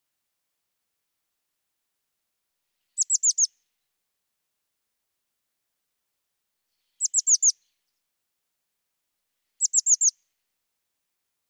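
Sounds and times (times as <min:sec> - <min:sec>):
bird song of sharp high-pitched downslurred notes: 0:03.0 - 0:03.5, 0:07.0 - 0:07.6, 0:09.6 - 0:10.1.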